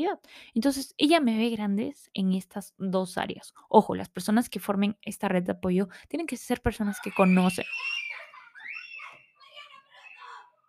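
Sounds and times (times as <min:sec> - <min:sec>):
speech: 0:00.0 - 0:08.0
several people shouting and screaming nearby: 0:06.9 - 0:10.6.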